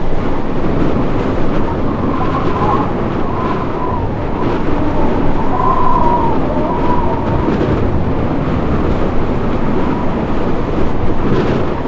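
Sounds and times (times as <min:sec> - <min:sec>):
high wind: 0:00.0 - 0:11.8.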